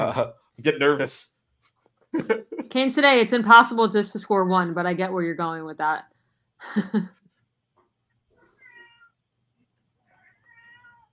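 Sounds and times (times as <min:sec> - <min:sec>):
speech: 0:00.0 - 0:01.4, 0:02.1 - 0:07.2
laughter: 0:02.1 - 0:02.8
cat meowing: 0:08.5 - 0:09.2, 0:10.1 - 0:11.1.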